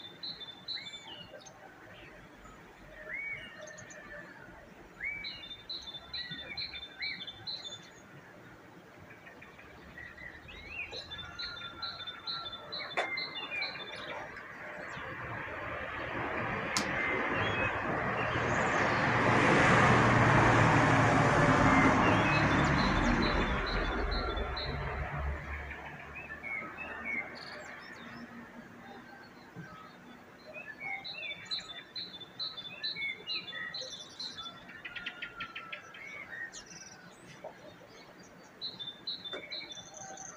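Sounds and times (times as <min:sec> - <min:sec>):
birds chirping: 0:00.0 - 0:19.7, 0:21.2 - 0:40.3
vehicle passing: 0:13.4 - 0:28.6.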